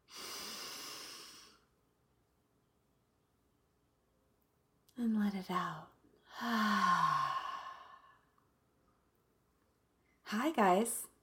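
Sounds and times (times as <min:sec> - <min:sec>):
deep breath inhaled: 0:00.1 - 0:01.7, 0:06.3 - 0:08.2
speech: 0:05.0 - 0:07.3, 0:10.3 - 0:11.1.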